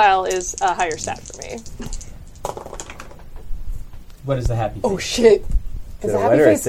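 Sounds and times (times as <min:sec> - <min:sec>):
dice rattling and clattering across a hard surface: 0:00.0 - 0:03.3
speech: 0:00.3 - 0:02.6, 0:04.2 - 0:06.6.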